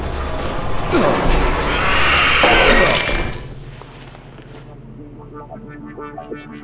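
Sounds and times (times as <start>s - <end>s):
heavy door forced open by hand, metallic grinding and scraping: 0.0s - 3.8s.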